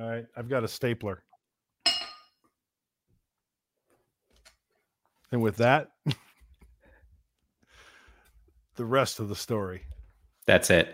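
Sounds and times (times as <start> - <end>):
speech: 0.2 - 1.3, 5.3 - 6.2, 8.8 - 10.9
pint glass of drinking water clinking: 1.8 - 2.4.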